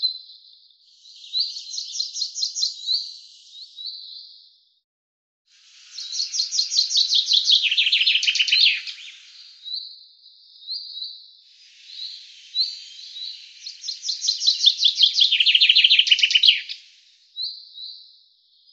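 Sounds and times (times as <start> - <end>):
Common chaffinch singing trills: 0.9 - 4.0, 5.8 - 9.9, 10.5 - 18.0.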